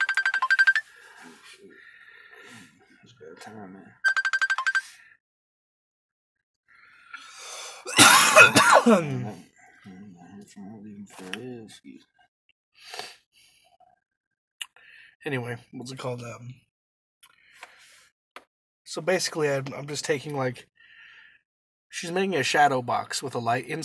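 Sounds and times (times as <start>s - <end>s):
phone ringtone for an incoming call: 0.0s - 1.4s, 4.0s - 5.2s
speech: 3.2s - 4.0s, 8.4s - 9.5s, 10.6s - 12.1s, 15.2s - 16.7s, 18.9s - 20.7s, 21.9s - 23.8s
person clearing throat with a cough: 7.9s - 9.4s.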